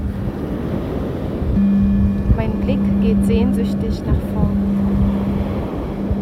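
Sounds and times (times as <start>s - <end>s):
ocean surf washing onto the shore: 0.0s - 6.2s
low tonal hum: 1.5s - 6.2s
speech: 2.7s - 4.6s.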